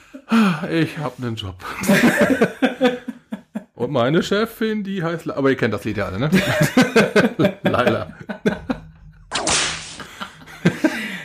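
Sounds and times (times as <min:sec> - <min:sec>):
speech: 0:00.3 - 0:03.1, 0:03.9 - 0:08.6
laughter: 0:01.8 - 0:03.8, 0:06.3 - 0:09.1, 0:10.0 - 0:11.2
whip cracking: 0:09.3 - 0:10.1.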